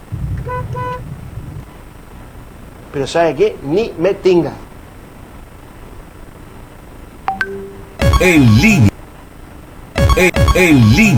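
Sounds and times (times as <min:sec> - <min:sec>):
steady low engine rumble: 0:00.0 - 0:05.7
car horn honking: 0:00.4 - 0:01.0
speech: 0:02.9 - 0:04.6, 0:08.2 - 0:08.9, 0:10.2 - 0:11.1.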